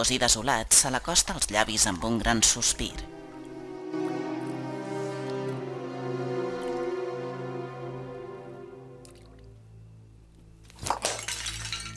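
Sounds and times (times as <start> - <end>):
speech: 0.0 - 3.1
sustained musical tones: 2.3 - 10.6
earthenware cup thrown and breaking: 10.7 - 11.9
earthenware cup fragments clinking: 10.8 - 11.9.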